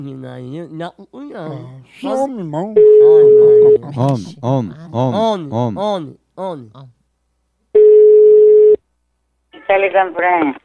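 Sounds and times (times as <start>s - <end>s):
speech: 0.0s - 7.0s, 9.7s - 10.6s
telephone ringing with an incoming call: 2.8s - 3.8s, 7.8s - 8.8s.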